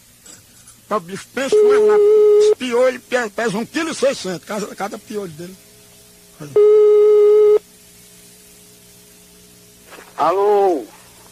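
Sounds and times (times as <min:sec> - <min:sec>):
speech: 0:00.9 - 0:05.6, 0:06.4 - 0:07.0, 0:10.2 - 0:11.0
telephone busy tone after a dropped call: 0:01.5 - 0:02.6, 0:06.6 - 0:07.6.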